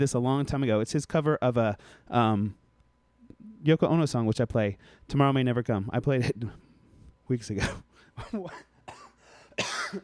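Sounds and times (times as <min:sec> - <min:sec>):
speech: 0:00.0 - 0:02.6, 0:03.6 - 0:06.6, 0:07.3 - 0:08.7, 0:09.6 - 0:10.0
person coughing: 0:07.6 - 0:10.0
throat clearing: 0:07.6 - 0:10.0.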